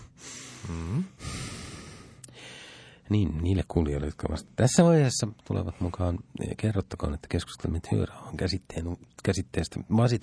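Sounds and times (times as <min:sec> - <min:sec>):
heavy breathing: 0:00.0 - 0:03.1
speech: 0:03.1 - 0:10.2.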